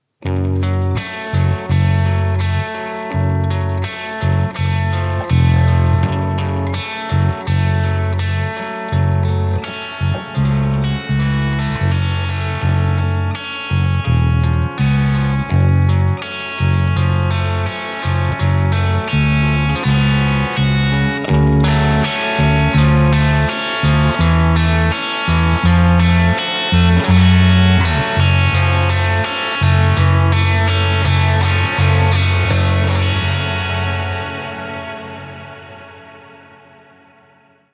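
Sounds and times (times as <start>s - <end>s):
bass: 0.0s - 36.4s
tragic guitars: 0.0s - 37.7s.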